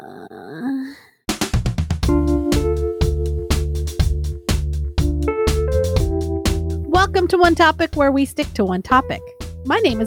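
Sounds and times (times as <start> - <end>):
person giving a short low vocal groan: 0.0 - 1.1
loud rhythmic music with a steady beat: 1.3 - 10.0
speech: 7.3 - 10.0.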